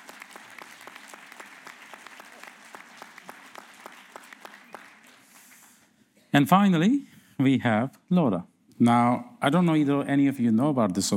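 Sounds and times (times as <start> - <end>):
audience applauding: 0.0 - 5.8
speech: 6.4 - 11.1.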